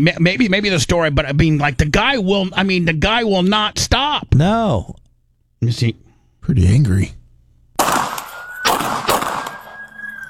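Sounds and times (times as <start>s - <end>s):
speech: 0.0s - 5.0s, 5.6s - 7.2s
pistol gunshots fired at a man near a car: 7.8s - 10.2s
steady high tone: 9.4s - 10.2s.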